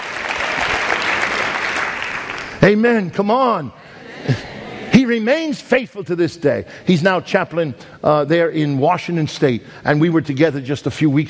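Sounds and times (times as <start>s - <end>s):
church congregation applauding: 0.0s - 2.8s
speech: 2.6s - 4.5s, 5.1s - 11.2s
laughter: 3.8s - 5.2s.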